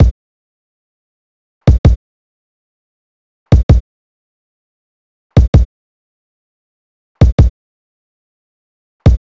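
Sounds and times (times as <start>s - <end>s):
beat: 3.5s - 3.8s, 5.4s - 5.7s, 7.2s - 7.5s.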